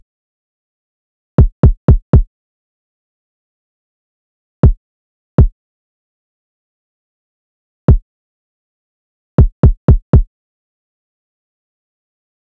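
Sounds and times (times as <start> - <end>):
drum loop with kick drum: 1.4 - 2.3, 9.4 - 10.3.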